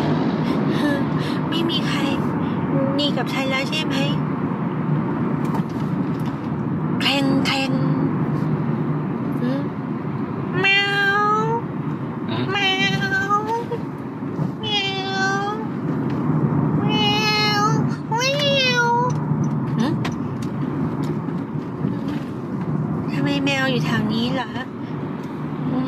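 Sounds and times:
steady low rumbling noise: 0:00.0 - 0:25.8
black cat meowing outside a window: 0:10.6 - 0:11.6, 0:16.8 - 0:19.1.

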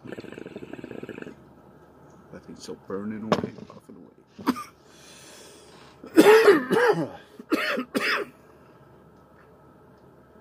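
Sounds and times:
faint noise: 0:00.0 - 0:10.4
speech: 0:02.6 - 0:03.8, 0:06.7 - 0:07.2
person coughing harshly: 0:04.4 - 0:04.7, 0:06.1 - 0:08.3.

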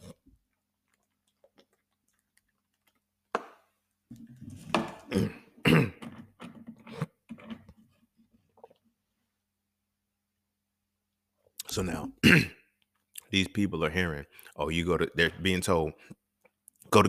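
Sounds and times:
person coughing after choking on spit: 0:05.0 - 0:06.1, 0:12.2 - 0:12.7
throat clearing: 0:05.0 - 0:06.1, 0:12.2 - 0:12.7
speech: 0:11.8 - 0:12.6, 0:13.3 - 0:16.2.

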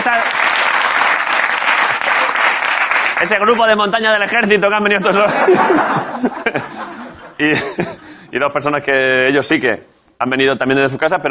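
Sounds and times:
crowd applause at a live event: 0:00.0 - 0:03.6
laughter: 0:01.6 - 0:02.6, 0:05.0 - 0:08.4
speech: 0:03.2 - 0:11.3.

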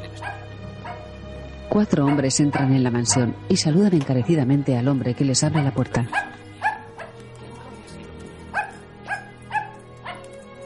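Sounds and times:
dog barking inside a mansion: 0:00.1 - 0:01.1, 0:01.9 - 0:03.4, 0:05.4 - 0:07.8, 0:08.5 - 0:10.3
speech: 0:01.7 - 0:06.4.

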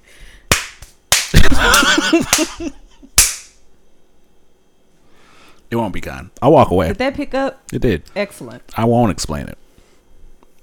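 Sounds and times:
sharp loud hand slaps: 0:00.5 - 0:02.6, 0:03.2 - 0:03.6
laughter: 0:01.4 - 0:03.1
speech: 0:01.6 - 0:02.8, 0:05.7 - 0:09.6.

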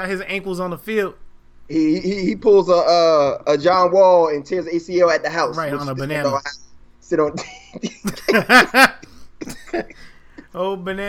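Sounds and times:
speech: 0:00.0 - 0:11.0
laughter: 0:07.4 - 0:10.5
person coughing: 0:09.0 - 0:10.1.

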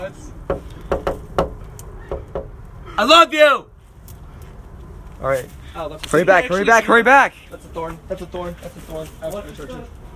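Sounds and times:
sharp knocking: 0:00.4 - 0:02.6
speech: 0:03.0 - 0:03.7, 0:05.2 - 0:10.0.

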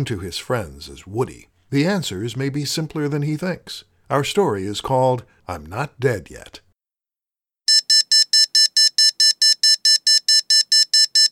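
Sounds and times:
speech: 0:00.0 - 0:06.6
electronic alarm clock beeping: 0:07.7 - 0:11.3.

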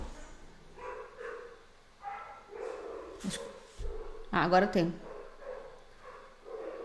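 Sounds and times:
dogs barking: 0:00.7 - 0:04.3, 0:05.0 - 0:06.8
speech: 0:03.2 - 0:03.5, 0:04.4 - 0:05.1.

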